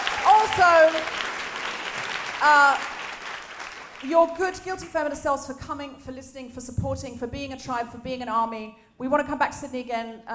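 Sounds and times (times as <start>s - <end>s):
audience applause at a live comedy show: 0.0s - 4.3s
speech: 0.6s - 1.3s, 2.4s - 2.9s, 4.0s - 10.3s.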